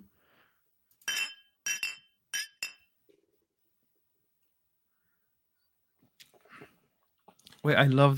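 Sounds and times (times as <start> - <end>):
glasses of mezcal clinking in a toast: 1.0 - 3.0
speech: 7.6 - 8.1.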